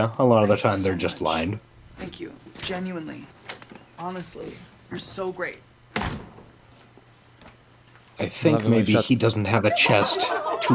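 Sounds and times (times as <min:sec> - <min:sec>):
speech: 0:00.0 - 0:03.4, 0:04.0 - 0:05.7, 0:08.2 - 0:10.7
door on a set slamming shut: 0:05.9 - 0:06.6
laughter: 0:09.5 - 0:10.7.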